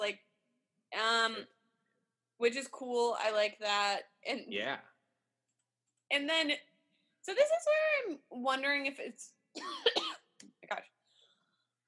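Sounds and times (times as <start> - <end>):
speech: 0.1 - 0.3, 0.9 - 1.6, 2.4 - 4.9, 6.1 - 10.0, 10.7 - 10.9
person coughing: 9.6 - 10.3.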